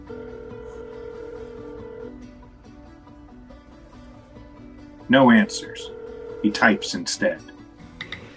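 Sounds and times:
smartphone dialing a call with electronic tones: 0.0s - 2.2s, 5.2s - 7.1s
speech: 5.1s - 7.6s.

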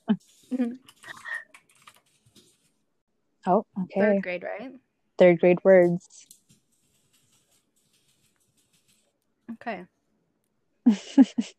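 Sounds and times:
speech: 0.1s - 0.8s, 3.4s - 6.3s, 9.6s - 9.9s, 10.9s - 11.5s
typing on a computer keyboard: 0.9s - 2.6s, 6.2s - 9.1s.

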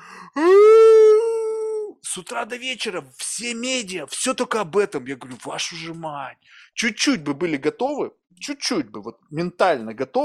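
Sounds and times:
person imitating a mournful howl: 0.4s - 2.0s
speech: 2.1s - 10.2s.

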